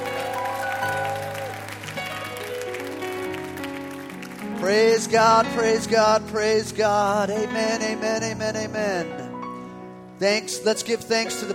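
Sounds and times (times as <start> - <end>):
church congregation clapping during a worship service: 0.0 - 6.2
speech: 4.6 - 9.2, 10.2 - 11.5.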